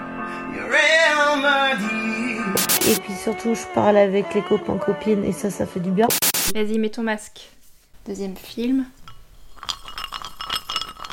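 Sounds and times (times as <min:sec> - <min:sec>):
speech: 0:00.5 - 0:09.0
ice cubes clinking and rattling against a glass: 0:09.6 - 0:11.1.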